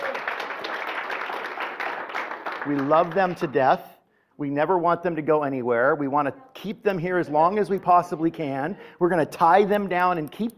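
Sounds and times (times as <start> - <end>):
crowd applauding: 0.0 - 3.5
speech: 2.6 - 10.5.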